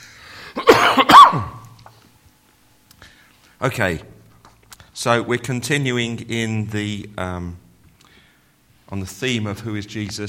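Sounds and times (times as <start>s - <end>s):
harsh raspy coughs: 0.3s - 1.8s
speech: 3.6s - 4.1s, 5.0s - 7.6s, 8.9s - 10.2s.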